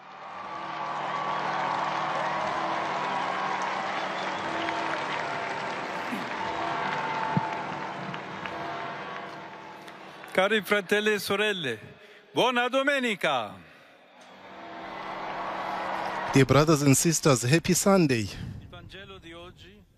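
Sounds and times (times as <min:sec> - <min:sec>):
large enthusiastic crowd clapping to welcome the Holy Father at Sunday liturgy: 0:00.0 - 0:11.3, 0:14.4 - 0:17.2
speech: 0:10.4 - 0:13.6, 0:16.4 - 0:19.0.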